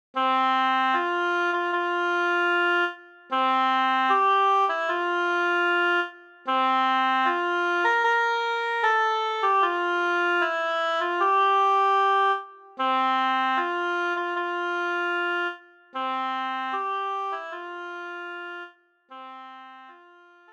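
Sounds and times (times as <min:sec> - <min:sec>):
solo oboe: 0:00.2 - 0:20.5.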